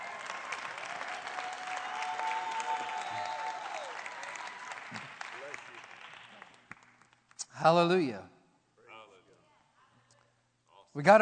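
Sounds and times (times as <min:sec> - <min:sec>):
applause from a large gathering: 0:00.0 - 0:07.2
speech: 0:07.6 - 0:08.3, 0:11.0 - 0:11.1.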